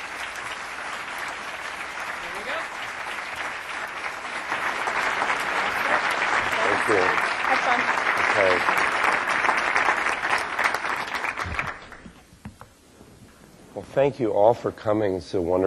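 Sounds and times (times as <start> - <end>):
audience applause welcoming a speaker: 0.0 - 12.2
speech: 6.9 - 7.2, 14.0 - 15.6.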